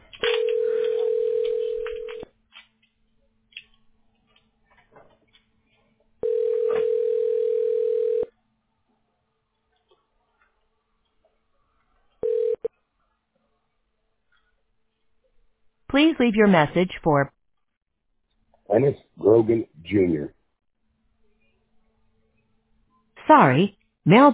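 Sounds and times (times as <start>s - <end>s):
telephone ringback tone on an outgoing call: 0.3s - 2.2s, 6.2s - 8.3s, 12.2s - 12.7s
speech: 16.0s - 17.4s, 18.7s - 20.4s, 23.3s - 24.3s.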